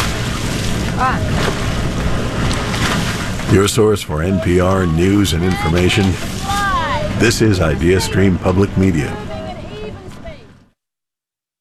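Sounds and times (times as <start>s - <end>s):
river water splashing and churning: 0.0s - 10.6s
wind: 0.0s - 10.8s
speech: 1.0s - 1.5s, 3.5s - 6.5s, 7.2s - 9.2s.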